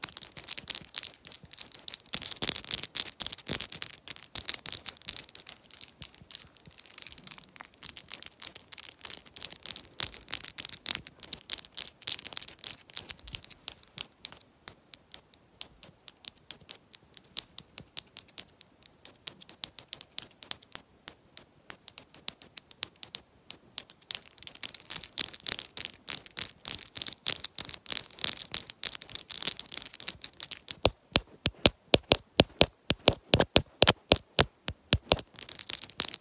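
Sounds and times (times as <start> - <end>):
long nails tapping quickly on a lens: 0.0 - 36.1.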